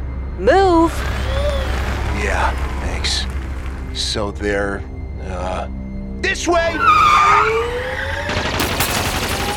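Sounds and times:
speech: 0.4s - 1.1s, 2.2s - 3.3s, 4.0s - 8.6s
gunfire: 8.3s - 9.5s.

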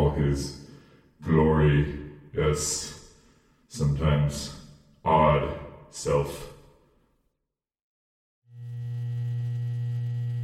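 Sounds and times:
speech: 0.3s - 0.6s, 1.2s - 3.0s, 3.7s - 6.5s
electrical transformer humming: 8.5s - 10.4s.

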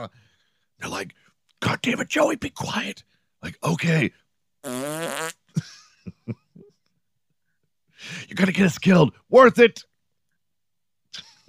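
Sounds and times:
speech: 0.0s - 6.4s, 8.0s - 9.9s
long buzzy fart with sputtering pops: 4.6s - 5.5s.

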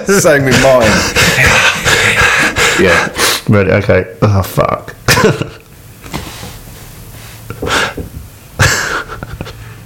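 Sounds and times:
speech: 0.0s - 1.8s, 2.8s - 5.6s
heavy anxious breathing: 0.5s - 3.5s, 7.2s - 9.8s.

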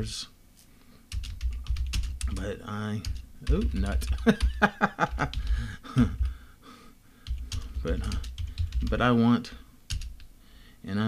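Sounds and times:
speech: 0.0s - 0.3s, 2.3s - 6.2s, 7.8s - 9.6s, 10.8s - 11.0s
typing on a computer keyboard: 1.1s - 5.6s, 7.2s - 9.1s, 9.9s - 10.3s.

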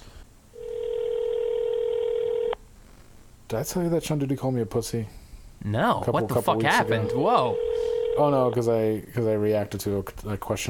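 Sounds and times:
ringback tone from outgoing phone call: 0.6s - 2.6s, 6.6s - 8.6s
speech: 3.5s - 10.6s.

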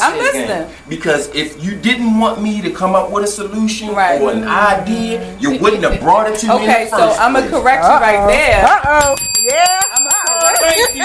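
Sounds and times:
speech: 0.1s - 11.0s
bell ringing rapidly with bright metallic strikes: 9.0s - 11.0s.

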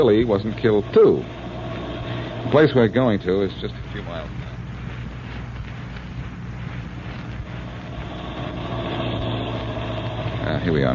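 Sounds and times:
speech: 0.0s - 1.4s, 2.4s - 4.4s, 10.4s - 10.9s
car engine pulling up to a cabin and idling: 0.0s - 10.9s.

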